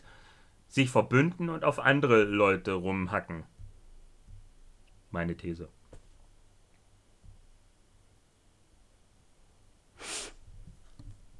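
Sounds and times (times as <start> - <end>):
speech: 0.8 - 3.5, 5.1 - 5.8
sharp breathy sneeze: 10.0 - 10.4.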